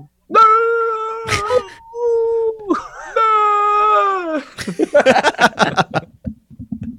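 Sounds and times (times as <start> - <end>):
female dog screaming and yowling instead of barking: 0.3 - 4.4
laughter: 2.7 - 3.2, 3.9 - 6.1.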